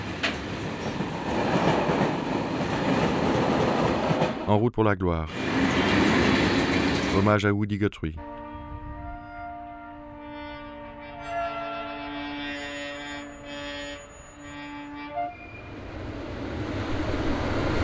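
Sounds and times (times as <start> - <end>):
train rumbling past: 0.0 - 4.5, 5.3 - 7.4, 12.3 - 17.8
speech: 4.5 - 5.4, 7.2 - 8.2
train horn sounding a long steady chord: 8.2 - 15.8.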